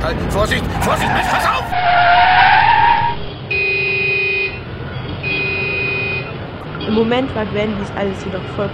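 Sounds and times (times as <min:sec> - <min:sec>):
car tires skidding as a car brakes hard: 0:00.0 - 0:03.4
speech: 0:00.1 - 0:02.2, 0:06.9 - 0:08.7
car horn blasts: 0:03.0 - 0:07.0.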